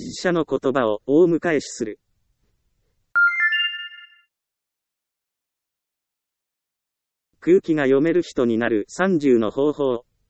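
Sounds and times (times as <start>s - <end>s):
speech: 0.2s - 2.0s, 7.4s - 10.1s
mobile phone ringtone electronic chime: 3.2s - 4.3s.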